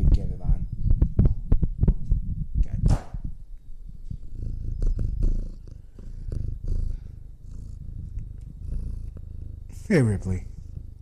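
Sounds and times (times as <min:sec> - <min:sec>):
cat purring: 0:00.0 - 0:11.0
speech: 0:09.9 - 0:10.5.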